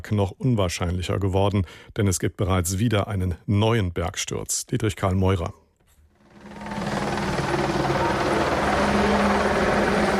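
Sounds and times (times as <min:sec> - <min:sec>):
speech: 0:00.0 - 0:05.6
helicopter flying overhead with rumbling rotor whir and rhythmic chop: 0:06.2 - 0:10.1.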